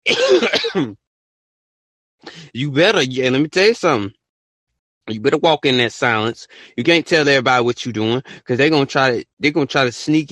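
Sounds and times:
brief cough: 0:00.0 - 0:01.0
gravelly throat clearing: 0:00.0 - 0:01.0, 0:02.3 - 0:02.5
speech: 0:00.1 - 0:01.0, 0:02.2 - 0:04.2, 0:05.1 - 0:10.3.

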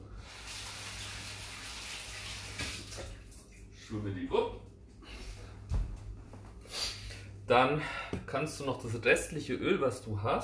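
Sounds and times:
running tap water as hands are washed in a kitchen: 0:00.0 - 0:03.7
speech: 0:03.9 - 0:04.6, 0:07.5 - 0:10.4.

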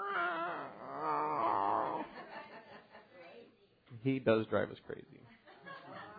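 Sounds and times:
human voice imitating an unhappy male cat's meow: 0:00.0 - 0:02.1
laughter: 0:01.9 - 0:03.2, 0:05.4 - 0:06.1
speech: 0:04.0 - 0:05.4.

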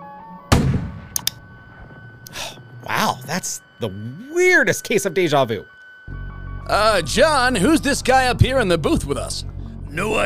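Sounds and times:
starting gun firing: 0:00.5 - 0:02.2
speech: 0:03.3 - 0:05.8, 0:06.7 - 0:10.2.

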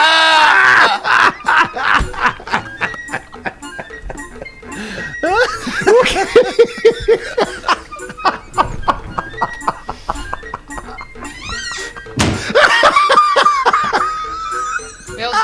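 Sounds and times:
laughter: 0:00.0 - 0:15.4
door slamming shut from wind: 0:12.2 - 0:12.6.

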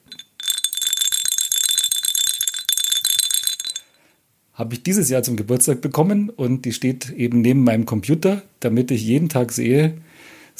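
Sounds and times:
small Japanese tiger bell being shaken: 0:00.0 - 0:04.0
speech: 0:04.6 - 0:10.5.

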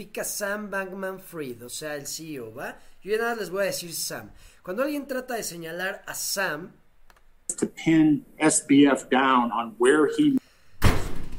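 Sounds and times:
speech: 0:00.0 - 0:06.8, 0:07.5 - 0:10.4
door slamming shut: 0:10.8 - 0:11.3.

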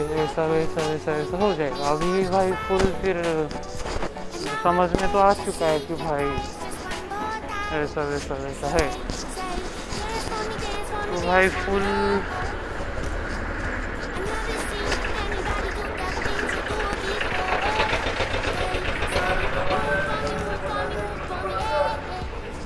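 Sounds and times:
speech: 0:00.3 - 0:03.9, 0:04.6 - 0:06.6, 0:07.7 - 0:09.3, 0:11.0 - 0:12.6
large vehicle engine rumbling: 0:05.5 - 0:22.6.

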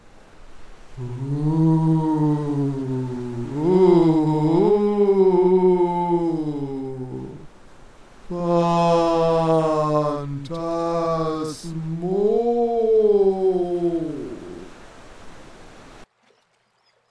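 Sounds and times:
human voice imitating howling storm wind whistling over cliffs: 0:00.9 - 0:07.6, 0:08.2 - 0:14.8
speech: 0:01.0 - 0:01.5.

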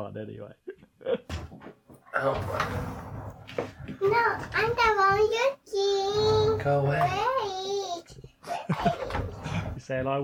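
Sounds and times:
speech: 0:00.0 - 0:07.8, 0:09.9 - 0:10.2
scratching and rattling at a locked door being forced: 0:01.3 - 0:07.5, 0:08.8 - 0:10.0.

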